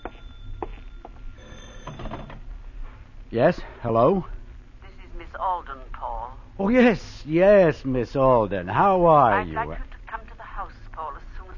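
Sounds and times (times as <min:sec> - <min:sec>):
telephone ringing with a clattery metallic bell: 0:00.0 - 0:02.6
low rumble: 0:02.2 - 0:11.5
speech: 0:03.3 - 0:04.3, 0:06.6 - 0:09.9.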